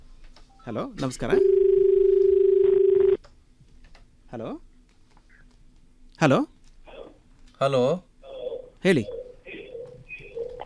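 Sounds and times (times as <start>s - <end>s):
speech: 0.7s - 1.6s, 4.3s - 4.7s, 6.2s - 6.5s, 7.6s - 8.1s, 8.8s - 9.2s
telephone line tone of an incoming call connecting: 1.4s - 3.2s.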